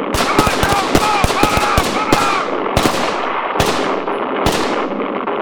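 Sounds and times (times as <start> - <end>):
shots: 0.1 - 5.3.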